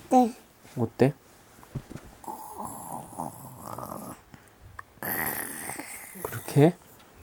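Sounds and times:
speech: 0.1 - 1.2, 6.6 - 6.8
child imitating a father snoring: 2.2 - 4.2, 5.0 - 6.6.

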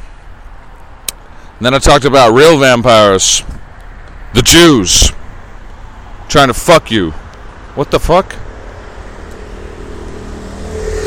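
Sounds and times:
speech: 1.6 - 3.6, 4.3 - 5.2, 6.3 - 7.2, 7.8 - 8.4
moped riding past in a bike lane: 8.6 - 11.0.

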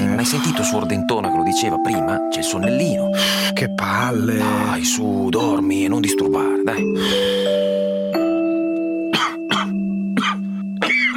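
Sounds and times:
steady sustained tonal background: 0.0 - 11.1
speech: 0.2 - 7.7
dry irritated cough: 9.1 - 11.1.

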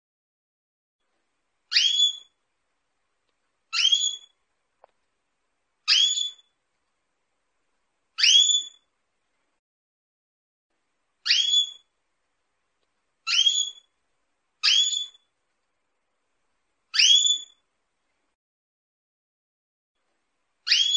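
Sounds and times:
female Belgian canary calling for mating: 1.7 - 2.4, 3.7 - 4.4, 5.9 - 6.5, 8.2 - 8.9, 11.2 - 11.9, 13.2 - 13.9, 14.6 - 15.3, 16.9 - 17.6, 20.6 - 20.9.

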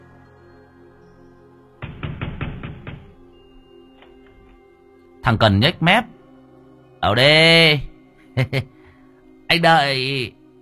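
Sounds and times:
knocking on a door: 1.8 - 3.2
speech: 5.3 - 6.2, 7.0 - 8.7, 9.5 - 10.4.

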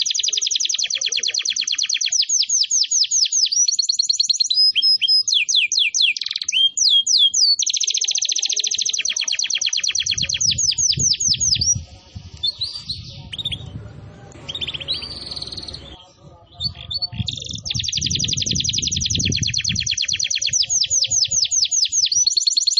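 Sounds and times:
canary singing as a lure to attract birds: 0.0 - 22.7
low rumbling background: 11.8 - 17.0.

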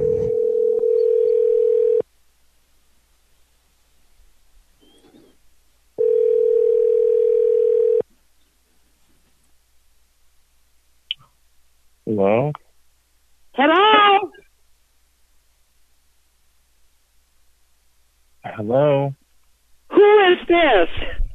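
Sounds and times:
telephone line tone while a three-way call is set up: 0.0 - 2.0, 6.0 - 8.0
faint low hum: 0.0 - 21.3
speech: 12.2 - 12.6, 13.6 - 13.9, 18.6 - 19.2, 20.3 - 21.1.

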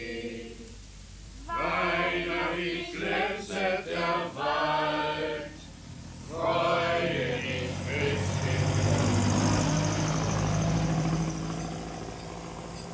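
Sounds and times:
broad low truck engine rumble: 0.0 - 12.9
truck driving past on a street on a mild summer evening: 4.0 - 12.9.

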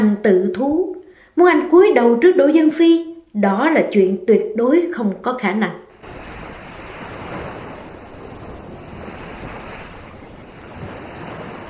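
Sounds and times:
speech: 0.0 - 6.2
surging sea waves around a boat deck: 5.9 - 11.6
wind around a boat deck: 5.9 - 11.6.

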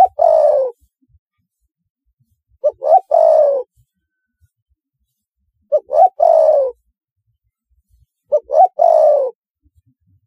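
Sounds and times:
spotted dove cooing: 0.0 - 0.8, 2.6 - 3.7, 5.7 - 6.8, 8.3 - 9.4.

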